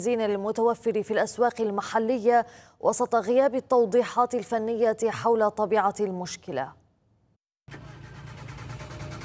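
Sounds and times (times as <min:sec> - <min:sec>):
speech: 0:00.0 - 0:06.8
car engine cranking without catching: 0:07.7 - 0:09.2.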